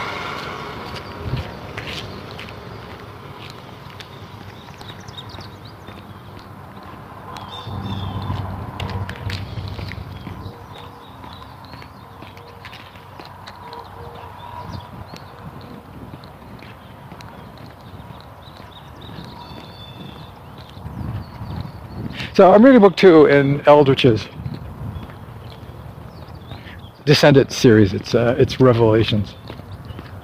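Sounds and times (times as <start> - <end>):
goat hooves clip-clopping outdoors: 0.8 - 7.6, 8.3 - 22.1, 28.8 - 30.2
speech: 22.4 - 24.3, 27.1 - 29.4.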